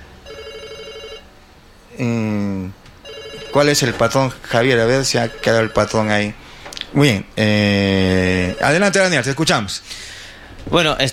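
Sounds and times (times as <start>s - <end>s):
telephone ringing with an incoming call: 0.2s - 1.3s, 3.0s - 6.3s, 8.4s - 9.1s
speech: 2.0s - 2.5s, 3.6s - 11.1s.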